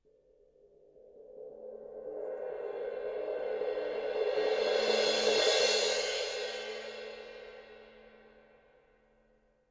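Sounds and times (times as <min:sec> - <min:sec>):
suspended cymbal roll: 0:02.3 - 0:08.6.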